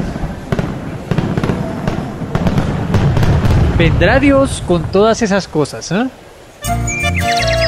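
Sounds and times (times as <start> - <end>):
fireworks popping and crackling: 0.0 - 5.7
rumbling background: 0.0 - 6.2
speech: 3.8 - 7.5.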